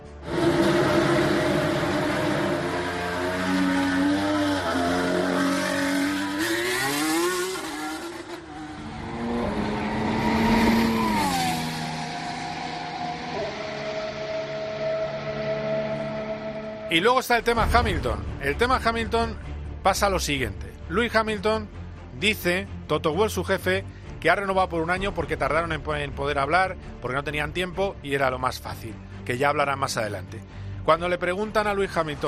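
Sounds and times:
Renault Formula 1 car engine revving: 0.2 - 16.9
speech: 16.9 - 32.2.

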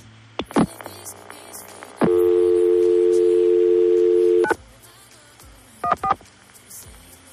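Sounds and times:
early mobile phone call tone beeps: 2.1 - 4.6.

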